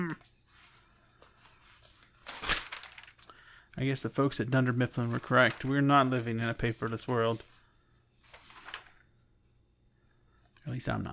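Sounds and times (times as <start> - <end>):
speech: 0.1 - 0.4, 3.8 - 7.5, 10.7 - 11.1
paper notebook pages being flipped: 0.3 - 3.3, 3.9 - 9.2.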